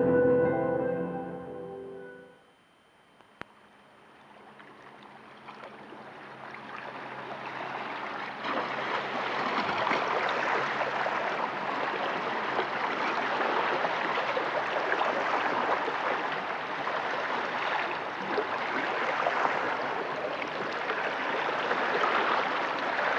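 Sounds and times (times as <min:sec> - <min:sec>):
brief musical intro: 0:00.0 - 0:02.5
sea water lapping and splashing at Yonago fishing port in Tsuruoka Japan: 0:04.1 - 0:23.1.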